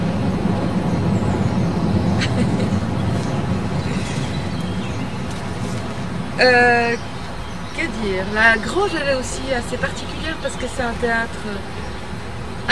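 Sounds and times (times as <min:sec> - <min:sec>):
metro train rumbling past: 0:00.0 - 0:12.7
person laughing: 0:02.2 - 0:04.6
speech: 0:06.4 - 0:07.1, 0:07.8 - 0:11.8.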